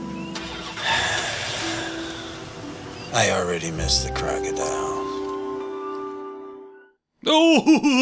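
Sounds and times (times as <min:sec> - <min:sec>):
truck engine cranking and starting: 0:00.3 - 0:02.6
speech: 0:03.2 - 0:05.1, 0:07.2 - 0:08.0
laughter: 0:07.3 - 0:08.0.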